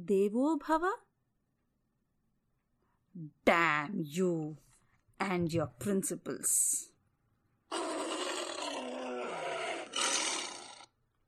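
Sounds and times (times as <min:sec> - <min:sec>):
speech: 0:00.1 - 0:01.1, 0:03.2 - 0:06.9
tiger roaring: 0:07.7 - 0:10.9.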